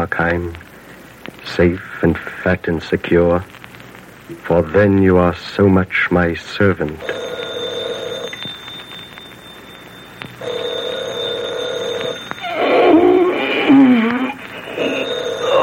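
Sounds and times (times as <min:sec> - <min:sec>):
speech: 0:00.0 - 0:00.6, 0:01.4 - 0:03.6, 0:04.3 - 0:07.3
telephone bell ringing: 0:07.0 - 0:15.6.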